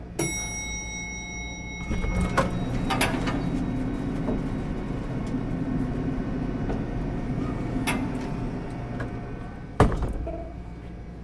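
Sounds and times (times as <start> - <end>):
elevator door opening and closing: 0.2 - 11.1
elevator door squeaks: 1.8 - 4.5, 9.9 - 10.7.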